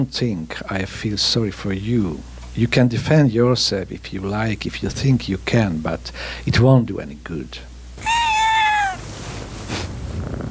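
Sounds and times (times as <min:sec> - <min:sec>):
speech: 0:00.0 - 0:08.1
cat meowing: 0:08.0 - 0:09.1.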